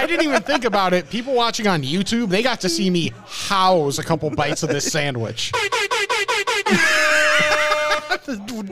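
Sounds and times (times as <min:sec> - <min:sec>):
laughter: 0:00.0 - 0:01.3, 0:03.9 - 0:08.6
speech: 0:00.1 - 0:06.1, 0:06.7 - 0:07.2, 0:08.1 - 0:08.6
warbling air horn sound effect: 0:05.5 - 0:08.3.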